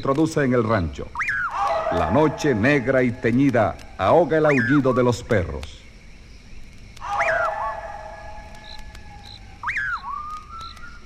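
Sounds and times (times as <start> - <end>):
speech: 0.0 - 1.2, 1.9 - 5.8
faint low hiss: 0.0 - 11.0
strange piercing eerie whistle on a dark road at night: 1.1 - 5.2, 7.0 - 11.0.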